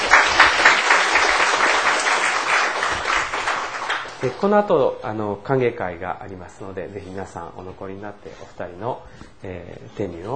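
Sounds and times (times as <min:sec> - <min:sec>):
audience applause at a church service: 0:00.0 - 0:04.5
speech: 0:04.2 - 0:10.3.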